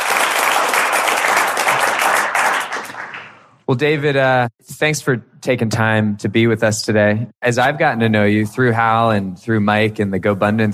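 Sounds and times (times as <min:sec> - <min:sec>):
crowd applauding enthusiastically: 0:00.0 - 0:03.4
speech: 0:03.7 - 0:10.7.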